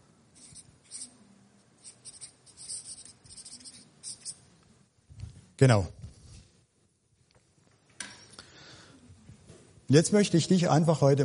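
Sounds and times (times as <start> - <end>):
pen or pencil scratching on paper as something is written down: 0.4 - 1.2, 1.8 - 4.4
speech: 5.6 - 6.0, 9.9 - 11.2.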